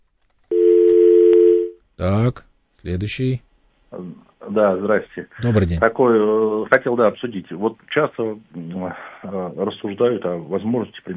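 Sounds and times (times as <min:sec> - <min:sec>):
telephone line tone of an incoming call: 0:00.5 - 0:01.8
speech: 0:02.0 - 0:11.1.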